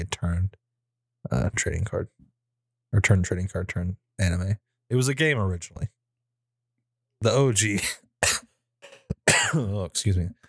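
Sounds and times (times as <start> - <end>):
speech: 0.0 - 0.6, 1.2 - 2.2, 2.9 - 6.0, 7.2 - 8.5, 9.5 - 10.4
person coughing: 8.2 - 9.8.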